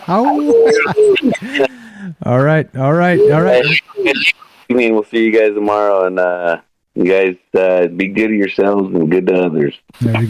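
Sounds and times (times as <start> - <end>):
laughter: 0.1 - 2.1, 3.2 - 4.3
speech: 0.1 - 10.2
howling: 0.3 - 1.4, 3.2 - 4.3.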